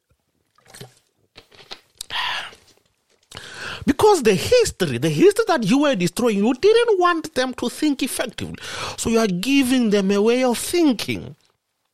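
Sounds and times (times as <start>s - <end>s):
person sipping water: 0.4s - 3.8s
soft wet mouth clicks: 0.7s - 2.7s
speech: 4.0s - 11.4s.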